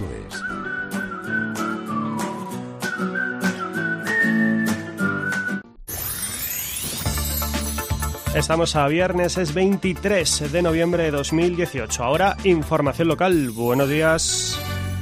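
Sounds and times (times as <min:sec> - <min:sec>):
person whistling a bright bouncy tune: 0:00.1 - 0:05.7
swooshing sweeping sound effect: 0:05.8 - 0:08.2
speech: 0:08.4 - 0:14.6.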